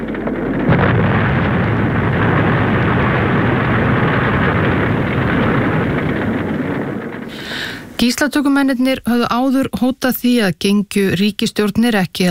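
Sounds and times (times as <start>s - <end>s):
explosions of hijacked jet airliners in fire and smoke: 0.0s - 8.1s
speech: 8.0s - 12.3s.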